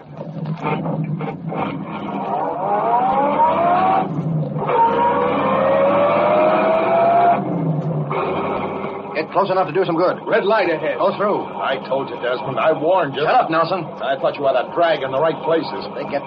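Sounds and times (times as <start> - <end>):
car engine roaring and accelerating through gear shifts: 0.0 - 16.2
tire squeal: 0.7 - 7.4
speech: 9.4 - 16.2.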